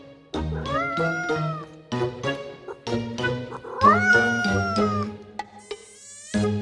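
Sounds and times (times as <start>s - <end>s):
cat meowing: 0.4s - 1.7s, 2.7s - 6.4s.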